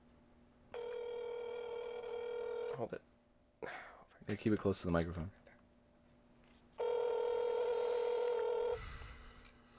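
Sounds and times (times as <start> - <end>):
phone ringback tone waiting for an answer: 0.8 - 2.8, 6.8 - 8.8
speech: 2.8 - 3.1, 4.3 - 5.4.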